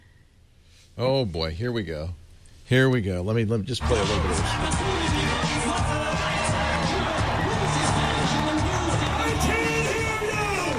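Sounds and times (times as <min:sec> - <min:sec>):
speech: 0:01.0 - 0:05.9
large fan crowd roaring and cheering at fan fest: 0:03.8 - 0:10.7.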